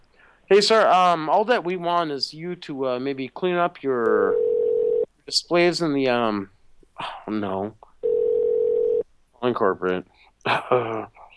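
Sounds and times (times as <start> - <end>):
speech: 0.5 - 4.4, 5.3 - 7.9, 9.4 - 11.2
telephone dial tone: 4.3 - 5.1, 8.0 - 9.0.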